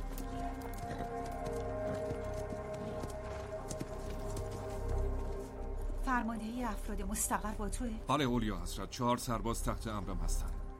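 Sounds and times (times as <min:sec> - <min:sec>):
white horse hooves clip-clopping as a rider mounts: 0:00.0 - 0:06.0
speech: 0:06.1 - 0:10.6.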